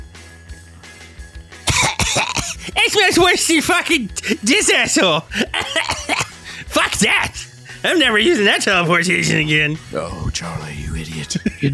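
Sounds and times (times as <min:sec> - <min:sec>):
harsh coughing fit: 0:01.6 - 0:02.9, 0:04.1 - 0:04.5, 0:05.3 - 0:07.5
laughter: 0:01.7 - 0:09.4, 0:11.2 - 0:11.7
speech: 0:02.8 - 0:05.8, 0:07.0 - 0:11.7.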